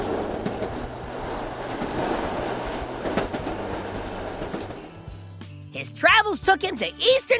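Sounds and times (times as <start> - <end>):
train rumbling along rails: 0.0 - 5.6
speech: 5.8 - 7.3.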